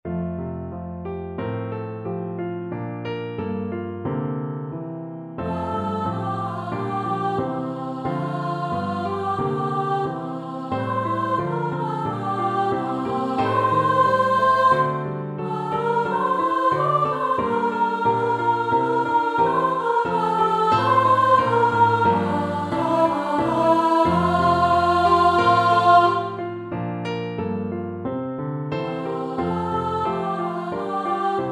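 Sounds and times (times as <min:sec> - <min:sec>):
piano in F major: 0:00.0 - 0:31.4
solo voice singing in F major: 0:05.5 - 0:26.4, 0:29.0 - 0:31.4.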